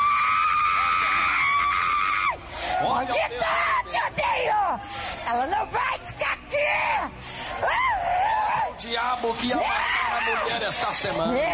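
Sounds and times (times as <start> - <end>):
people screaming at a church deliverance service: 0.0 - 4.8, 6.6 - 8.8, 9.5 - 10.8
speech: 3.0 - 7.9, 8.8 - 11.5.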